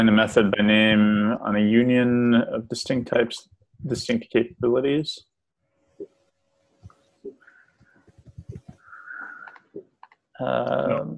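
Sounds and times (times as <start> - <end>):
speech: 0.0 - 5.3, 10.4 - 11.1
burst of louder broadband noise: 7.1 - 9.8
computer keyboard keys clacking: 8.2 - 10.2.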